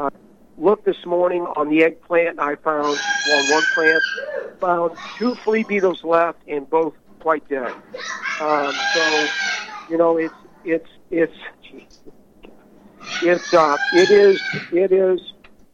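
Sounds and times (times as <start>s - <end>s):
speech: 0.0s - 12.2s, 13.0s - 15.3s
pet parrot squawking loudly: 2.8s - 6.0s, 7.7s - 10.7s, 13.0s - 14.7s.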